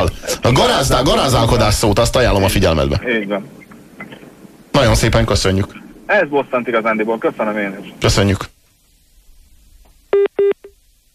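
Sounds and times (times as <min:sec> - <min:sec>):
speech: 0:00.0 - 0:03.6, 0:04.8 - 0:08.5
phone line disconnect tone beeps after caller hangs up: 0:10.2 - 0:10.8.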